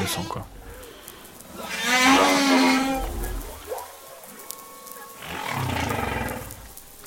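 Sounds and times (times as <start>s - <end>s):
speech: 0.1s - 0.6s
whale calls: 1.6s - 7.0s.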